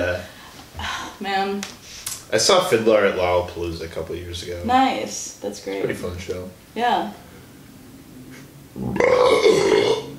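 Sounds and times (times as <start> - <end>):
speech: 1.2 - 7.3, 8.8 - 9.7
burp: 8.8 - 10.1.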